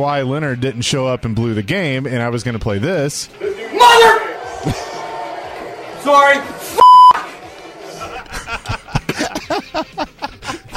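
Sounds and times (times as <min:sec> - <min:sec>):
speech: 0:00.0 - 0:04.9, 0:06.0 - 0:06.8
people snickering and chuckling: 0:04.4 - 0:10.7
censor beep over a swear word: 0:06.8 - 0:07.2.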